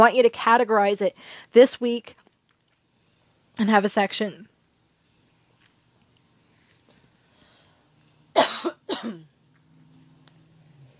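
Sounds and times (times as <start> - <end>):
speech: 0.0 - 2.2, 3.6 - 4.5
quiet low hum: 0.0 - 10.9
person coughing forcefully: 8.4 - 9.3.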